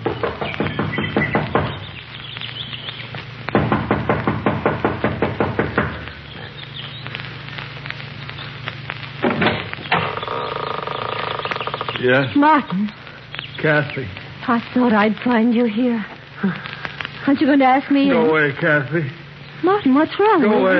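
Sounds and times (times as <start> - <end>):
impatient knocking on a wooden front door: 0.0 - 1.8, 3.5 - 6.0
faint hum: 0.0 - 20.7
outdoor ambience: 0.0 - 20.7
speech: 12.0 - 13.0, 13.6 - 20.7.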